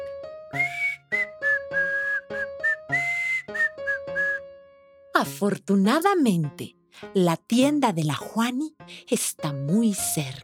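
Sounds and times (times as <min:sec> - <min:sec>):
speech: 0:00.5 - 0:00.8, 0:05.2 - 0:10.4
person whistling a bright cheerful tune: 0:00.6 - 0:04.5.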